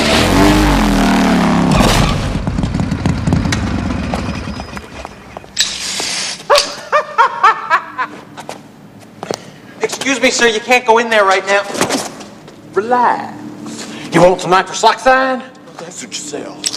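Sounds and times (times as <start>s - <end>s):
motorcycle engine roaring: 0.0s - 5.5s
motorcycle crashing into a wall: 1.7s - 2.8s
laughter: 6.5s - 8.3s
speech: 10.3s - 11.9s, 12.8s - 13.4s, 14.1s - 16.6s.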